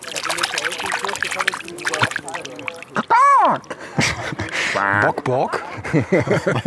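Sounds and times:
hand splashing water in a lake: 0.0s - 5.3s
laughter: 2.0s - 6.6s
speech: 4.8s - 6.6s.

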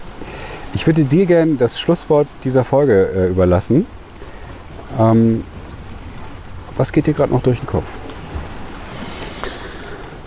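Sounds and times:
ocean waves breaking on shore: 0.0s - 10.2s
wind: 0.0s - 10.2s
speech: 0.8s - 4.0s, 5.0s - 5.6s, 6.8s - 8.0s.

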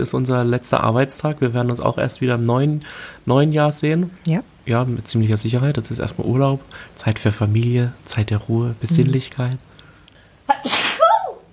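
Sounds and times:
speech: 0.0s - 9.7s
person sneezing: 10.5s - 11.4s.

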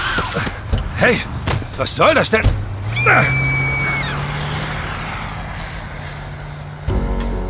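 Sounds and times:
sharp high squeal: 0.0s - 0.5s, 2.8s - 6.3s
car engine droning around a street corner: 0.3s - 7.4s
speech: 1.0s - 3.4s.

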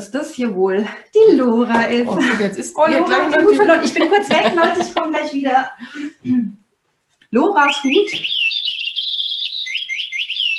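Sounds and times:
speech: 0.0s - 6.6s, 7.3s - 8.4s
laughter: 1.8s - 6.2s
parrot-like video game bird character chirping and tweeting: 7.6s - 10.5s.

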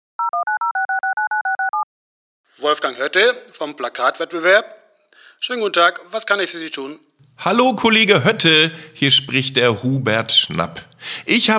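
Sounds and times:
short electronic two-note telephone beeps: 0.2s - 1.9s
speech: 2.6s - 4.8s, 5.4s - 11.5s.

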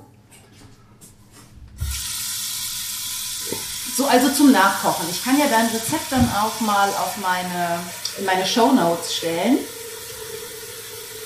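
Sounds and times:
water pouring from tap into sink: 1.8s - 11.2s
speech: 4.0s - 9.8s
tap turned on with a soft clunk: 5.8s - 6.6s.

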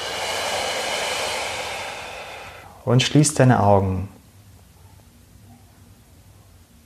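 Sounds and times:
long steady exhale during a guided meditation: 0.0s - 2.9s
speech: 2.8s - 4.2s.

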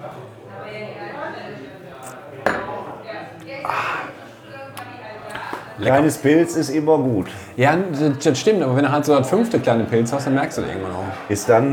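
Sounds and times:
murmuring voices and chatter: 0.6s - 9.9s
glasses clinking in a toast: 2.0s - 3.2s
speech: 5.8s - 11.7s.

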